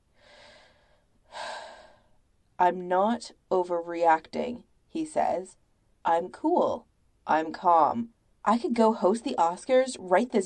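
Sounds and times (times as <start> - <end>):
deep inhale: 0.1 - 2.2
breathy exhale: 0.2 - 2.1
speech: 2.6 - 10.4.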